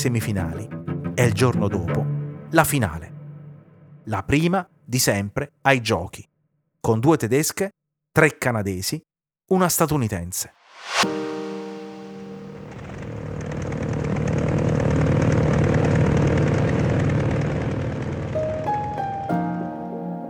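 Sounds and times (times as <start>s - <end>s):
speech: 0.0s - 3.2s, 4.0s - 11.2s
propeller airplane engine drone: 12.4s - 18.9s.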